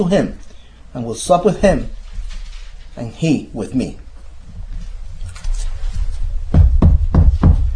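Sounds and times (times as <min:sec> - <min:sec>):
speech: 0:00.0 - 0:00.4, 0:01.0 - 0:02.0, 0:03.0 - 0:04.0
firm knocks on a door: 0:06.5 - 0:07.7.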